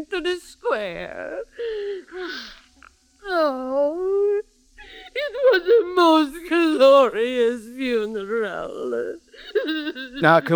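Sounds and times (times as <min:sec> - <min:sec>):
speech: 0:00.0 - 0:02.6, 0:03.3 - 0:04.1, 0:05.5 - 0:10.5
mourners wailing in a funeral procession through a bazaar square: 0:04.9 - 0:10.5.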